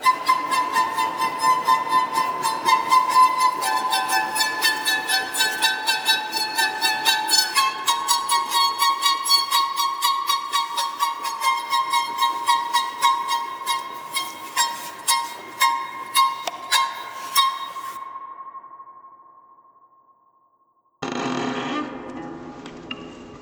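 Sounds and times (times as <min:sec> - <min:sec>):
violin playing high notes: 0:00.0 - 0:18.0.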